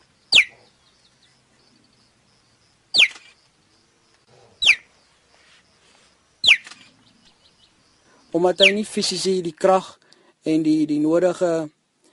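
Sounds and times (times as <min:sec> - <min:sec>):
cheetah's bird-like chirping call: 0:00.2 - 0:03.5, 0:04.1 - 0:05.4, 0:06.4 - 0:08.9
speech: 0:08.4 - 0:11.8.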